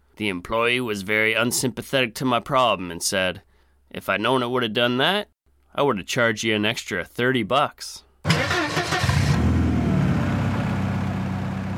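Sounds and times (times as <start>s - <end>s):
speech: 0.2s - 8.4s
car engine cranking and settling into idle: 8.3s - 11.7s.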